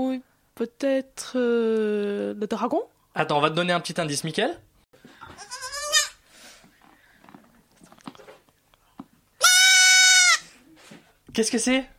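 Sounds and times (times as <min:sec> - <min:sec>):
speech: 0:00.0 - 0:04.7, 0:11.4 - 0:11.9
young goat kid bleating: 0:05.2 - 0:06.2, 0:09.4 - 0:10.5.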